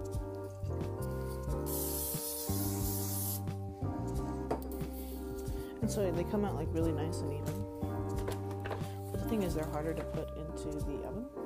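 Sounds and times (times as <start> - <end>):
soft music: 0.0 - 11.4
cooking spray from an aerosol can hissing onto a silicone baking pan: 1.6 - 3.5
speech: 5.9 - 7.6, 9.3 - 11.4.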